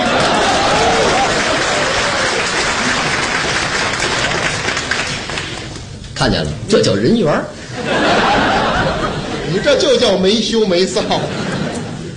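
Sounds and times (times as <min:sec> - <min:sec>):
laughter: 0:00.0 - 0:03.3, 0:07.6 - 0:12.1
audience applause at a live comedy crosstalk performance: 0:00.0 - 0:05.9
speech: 0:06.2 - 0:08.0, 0:09.6 - 0:11.5.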